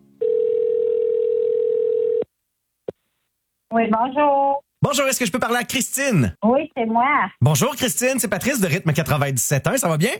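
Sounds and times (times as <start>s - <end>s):
telephone dial tone: 0.2s - 2.3s
speech: 3.7s - 10.1s.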